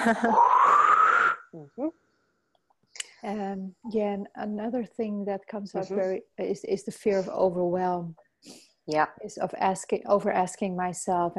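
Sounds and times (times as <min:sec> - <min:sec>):
speech: 0:00.0 - 0:00.5, 0:01.5 - 0:02.0, 0:03.2 - 0:11.3
person yawning: 0:00.1 - 0:01.9
person murmuring: 0:01.6 - 0:01.9, 0:05.8 - 0:06.2.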